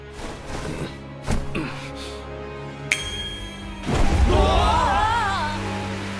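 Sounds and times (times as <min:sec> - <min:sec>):
heavy rain downpour: 0:03.8 - 0:06.1.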